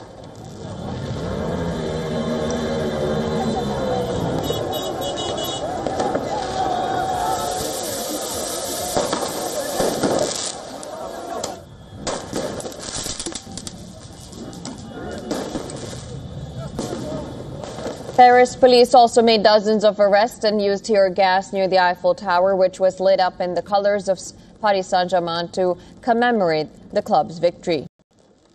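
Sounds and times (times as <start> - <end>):
fireworks and flares banging in a Paris street during football victory celebrations: 0.0 - 19.1
passing traffic: 0.0 - 22.6
crowd roar in a Paris street: 0.4 - 18.0
people shouting: 1.8 - 11.9, 13.3 - 17.9
speech: 18.2 - 27.9.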